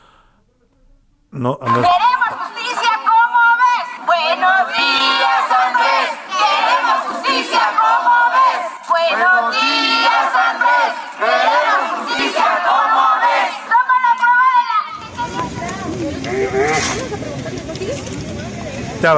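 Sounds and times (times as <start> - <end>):
speech: 1.4 - 2.6
protesters shouting chants at a rally: 1.7 - 16.6.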